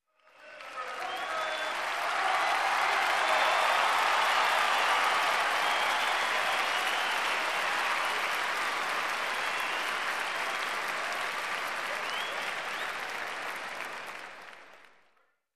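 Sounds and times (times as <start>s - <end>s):
people in a stadium applauding: 0.1s - 15.1s.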